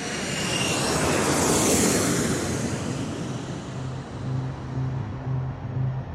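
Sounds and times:
jet-powered reconnaissance drone flying overhead: 0.0 - 6.1
faint hum: 3.6 - 6.1.

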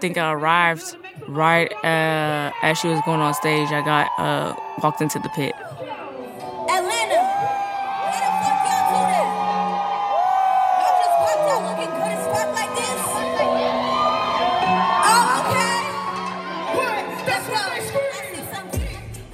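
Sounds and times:
speech: 0.0 - 5.8
big festival crowd cheering and yelling: 1.8 - 19.3
people screaming in a festival crowd: 2.2 - 5.8, 6.7 - 18.0.

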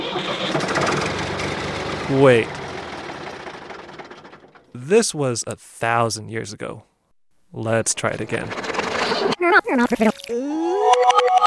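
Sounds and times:
tractor engine cranking and starting: 0.0 - 4.9, 7.7 - 10.2
speech: 2.1 - 2.6, 4.9 - 6.9, 7.5 - 11.4.

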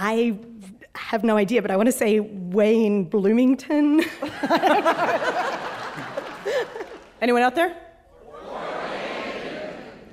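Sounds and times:
speech: 0.0 - 5.6, 6.5 - 7.8
laughter: 4.2 - 7.1, 8.2 - 10.1
live quiz audience shouting an answer in unison: 8.2 - 10.1.

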